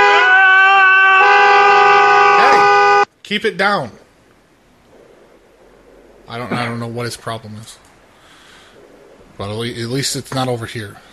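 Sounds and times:
car horn honking: 0.0s - 0.3s, 1.2s - 3.0s
speech: 3.3s - 4.0s, 6.3s - 7.9s, 9.4s - 11.1s.

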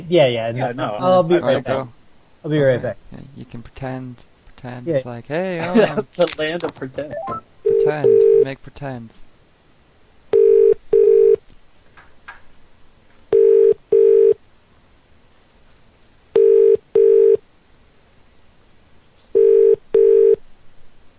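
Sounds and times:
speech: 0.0s - 9.3s
telephone ringback tone on a call: 7.2s - 8.4s, 10.3s - 11.4s, 13.3s - 14.4s, 16.4s - 17.4s, 19.4s - 20.4s.

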